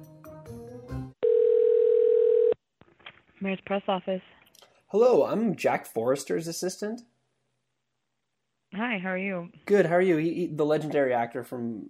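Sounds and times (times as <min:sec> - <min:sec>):
telephone line tones while calling an office: 0:01.2 - 0:02.6
speech: 0:03.4 - 0:07.1, 0:08.8 - 0:11.8.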